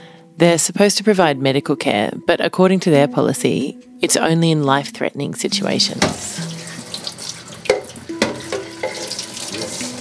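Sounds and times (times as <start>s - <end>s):
speech: 0.4s - 6.5s
tap running into a sink in a shared bathroom: 5.9s - 9.9s.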